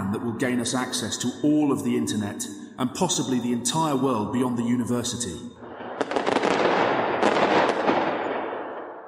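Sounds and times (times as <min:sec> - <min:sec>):
speech: 0:00.2 - 0:05.6
fireworks crackling and bursting: 0:05.7 - 0:09.0.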